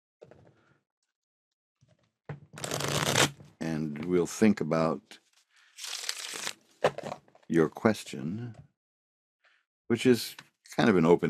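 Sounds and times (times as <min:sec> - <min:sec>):
speech: 0:04.1 - 0:05.2, 0:06.8 - 0:08.7, 0:09.9 - 0:11.2
deck of cards shuffled by hand for a card reading: 0:05.8 - 0:07.2.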